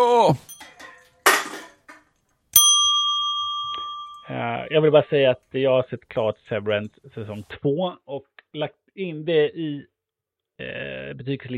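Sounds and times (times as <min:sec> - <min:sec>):
speech: 0:00.3 - 0:00.5, 0:04.4 - 0:09.9, 0:10.6 - 0:11.5
bright ding chime: 0:02.6 - 0:04.5.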